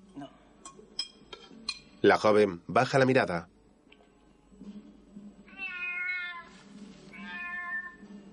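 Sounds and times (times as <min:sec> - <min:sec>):
spoon clinking against a dish: 0:00.6 - 0:02.0
speech: 0:02.0 - 0:03.5
cat meowing: 0:05.5 - 0:08.2.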